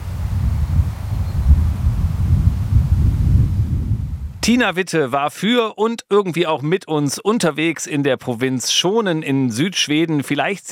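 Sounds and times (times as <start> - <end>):
sea surf roaring: 0.0 - 3.4
wind sweeping through grasses: 0.0 - 4.4
speech: 4.5 - 10.7.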